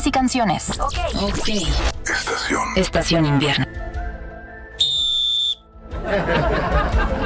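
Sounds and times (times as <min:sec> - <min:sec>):
speech: 0:00.0 - 0:03.9
referee whistle blast: 0:04.8 - 0:05.7
laughter: 0:05.9 - 0:07.2.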